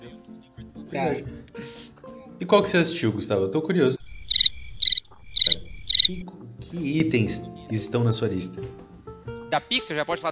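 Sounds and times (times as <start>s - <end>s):
speech: 0.9s - 4.0s, 6.1s - 8.8s, 9.5s - 10.3s
cricket chirping sound effect: 4.0s - 6.2s.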